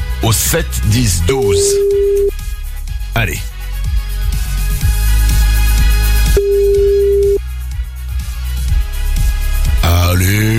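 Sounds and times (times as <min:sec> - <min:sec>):
pulsing music with a thumping bass beat: 0:00.0 - 0:10.5
speech: 0:00.3 - 0:02.3, 0:03.2 - 0:03.6
telephone ringback tone of an outgoing call: 0:01.6 - 0:02.3, 0:06.4 - 0:07.4.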